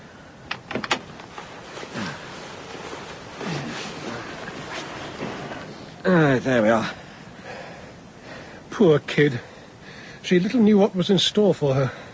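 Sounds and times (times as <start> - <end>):
car door unlatching with sharp clicks: 0.5 - 1.1
car door swinging open with a soft creak: 0.5 - 1.3
rustling movement: 0.6 - 7.4
speech: 6.0 - 7.0, 8.8 - 9.5, 10.2 - 12.0.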